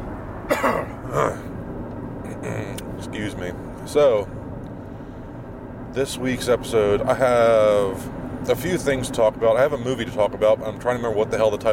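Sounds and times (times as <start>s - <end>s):
person clearing throat: 0.5s - 1.5s
speech: 0.6s - 1.4s, 3.4s - 4.4s, 6.0s - 11.7s.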